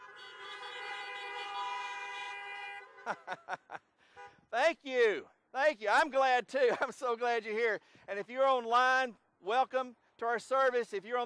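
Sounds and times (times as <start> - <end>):
car horns honking in a church parking lot: 0.0 - 3.1
laughter: 3.0 - 3.9
speech: 3.1 - 3.8, 4.5 - 11.2.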